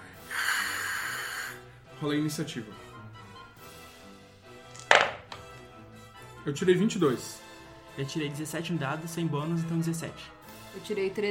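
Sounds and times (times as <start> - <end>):
person hissing with their mouth voicing a frightened creature: 0.1 - 1.7
speech: 2.0 - 2.9, 6.4 - 7.4, 8.0 - 11.2.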